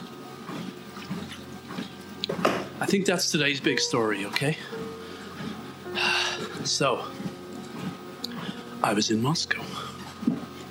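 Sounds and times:
person gulping and swallowing water: 0:00.4 - 0:02.4, 0:05.1 - 0:08.6
speech: 0:02.8 - 0:04.8, 0:06.8 - 0:07.2, 0:08.8 - 0:09.7.

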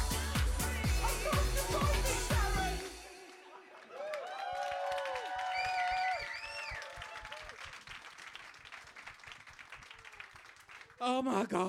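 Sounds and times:
laughter: 0:00.2 - 0:02.8
audience applause: 0:01.3 - 0:11.0
excited whoops and cheering voices: 0:03.8 - 0:07.6
speech: 0:11.2 - 0:11.6.

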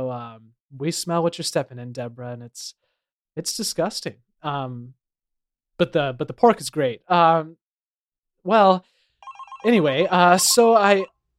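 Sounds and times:
speech: 0:00.1 - 0:02.8, 0:03.4 - 0:05.0, 0:05.8 - 0:07.6, 0:08.4 - 0:09.0, 0:09.6 - 0:11.2
person imitating a telephone bell ringing: 0:09.2 - 0:11.1.

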